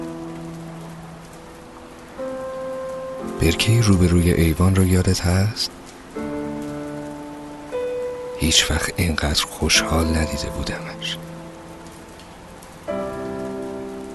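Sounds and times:
heavy rain pattering: 0.0 - 14.1
soft sustained musical tones: 0.0 - 14.1
speech: 3.4 - 5.8, 8.4 - 11.2.

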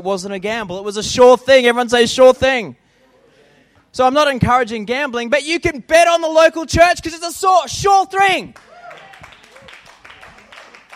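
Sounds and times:
speech: 0.0 - 2.8, 3.9 - 8.7
audience applauding enthusiastically: 8.6 - 10.9.

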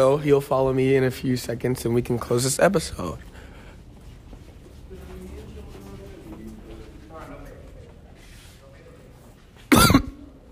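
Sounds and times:
speech: 0.0 - 3.3
faint hum: 0.0 - 10.4
person coughing: 9.7 - 10.4.

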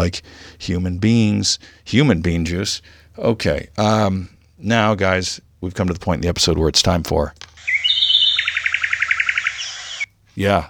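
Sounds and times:
speech: 0.0 - 7.4, 10.4 - 10.6
bird-call sound effect chirping: 7.6 - 10.1.

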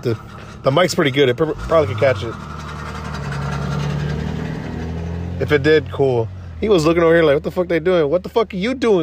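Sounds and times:
speech: 0.0 - 2.5, 5.4 - 9.0
loud car engine idling: 0.0 - 9.0.

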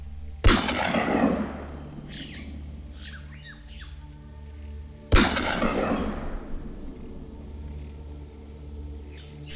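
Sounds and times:
low rumbling background: 0.0 - 9.5
gunshots fired by a farmer at a creature in a forest: 0.4 - 1.8, 5.1 - 6.4.

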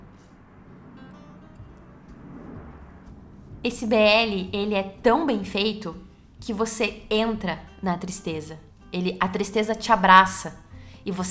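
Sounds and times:
airplane droning overhead: 0.0 - 7.9, 10.5 - 11.1
speech: 3.6 - 11.2.

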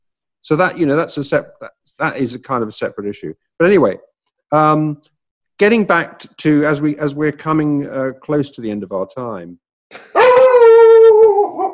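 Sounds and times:
speech: 0.4 - 10.5
dog howling: 10.2 - 11.7.

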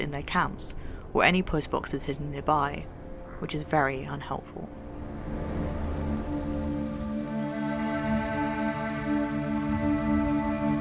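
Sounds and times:
speech: 0.0 - 5.4
steady rain pattering on hard surfaces: 4.2 - 10.7
sustained low tonal drone humming: 4.6 - 10.7.

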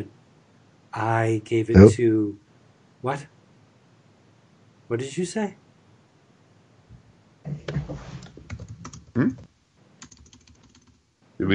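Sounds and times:
speech: 0.9 - 2.4, 3.0 - 3.3, 4.9 - 5.6, 9.2 - 9.4
typing on a plastic computer keyboard: 8.2 - 9.1, 10.0 - 11.0.

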